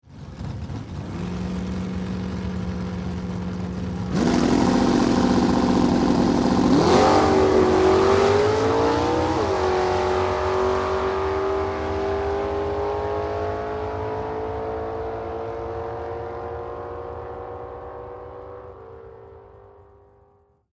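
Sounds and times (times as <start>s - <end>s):
two drag racing cars pulling away: 0.1s - 20.1s.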